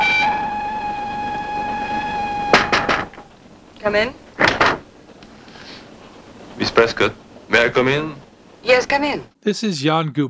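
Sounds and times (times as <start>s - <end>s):
train whistle blast: 0.0s - 3.3s
speech: 3.8s - 4.5s, 6.7s - 10.2s.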